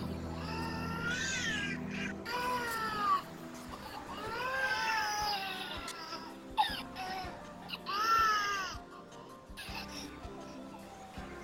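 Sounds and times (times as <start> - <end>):
baby crying: 0.4 - 8.8.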